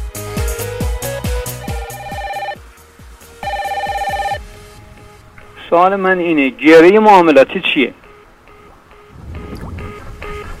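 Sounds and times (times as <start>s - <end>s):
telephone ringing with a warbling electronic tone: 1.4s - 2.6s, 3.4s - 4.4s
speech: 5.7s - 8.0s.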